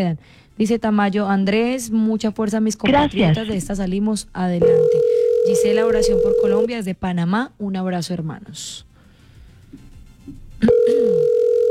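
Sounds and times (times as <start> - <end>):
speech: 0.0 - 8.9, 10.3 - 11.5
telephone call ringing unanswered: 4.6 - 6.7, 10.7 - 11.6.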